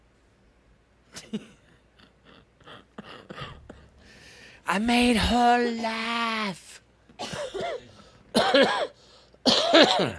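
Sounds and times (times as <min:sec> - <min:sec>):
speech: 0:01.3 - 0:01.6, 0:04.7 - 0:06.6, 0:09.7 - 0:10.1
person coughing: 0:02.7 - 0:03.9, 0:07.2 - 0:10.1.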